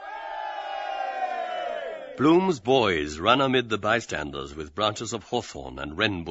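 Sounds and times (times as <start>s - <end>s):
crowd of men cheering: 0.0s - 2.6s
speech: 2.2s - 6.2s.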